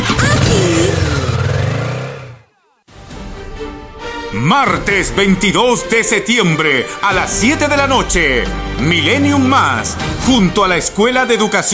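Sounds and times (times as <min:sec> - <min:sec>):
motorcycle engine revving: 0:00.0 - 0:02.5
speech: 0:04.4 - 0:11.7.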